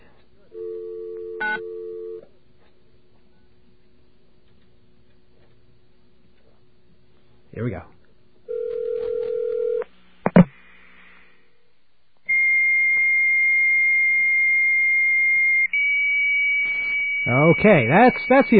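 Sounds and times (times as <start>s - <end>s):
fax machine and modem connection tones: 0.6s - 2.2s, 8.5s - 10.4s, 12.3s - 18.5s
speech: 7.6s - 8.0s, 17.5s - 18.5s.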